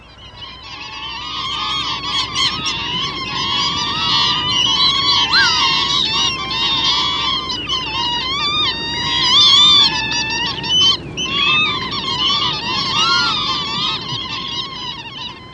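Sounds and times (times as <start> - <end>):
large flock of lapwings calling peewit in winter: 0.0 - 15.5.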